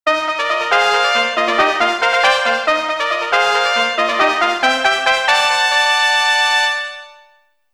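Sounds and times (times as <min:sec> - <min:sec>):
fanfare: 0:00.1 - 0:07.3.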